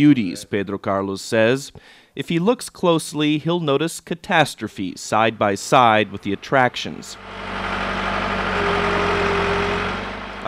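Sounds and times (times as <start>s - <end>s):
speech: 0.0s - 7.8s
tractor engines rumbling while clearing debris from a collapsed hillside: 5.1s - 10.4s.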